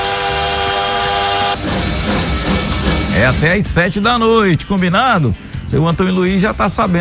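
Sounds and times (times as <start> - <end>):
steam hissing: 0.0 - 4.0
bullet train whistle sound effect: 0.0 - 4.1
rumbling: 0.0 - 4.5
speech: 3.2 - 6.9.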